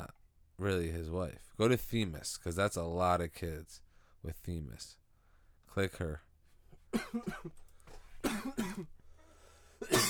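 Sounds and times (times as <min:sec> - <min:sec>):
speech: 0:00.6 - 0:05.0, 0:05.7 - 0:06.3, 0:06.9 - 0:07.6, 0:08.3 - 0:09.0
person coughing: 0:06.9 - 0:07.6, 0:08.2 - 0:08.9, 0:09.8 - 0:10.0.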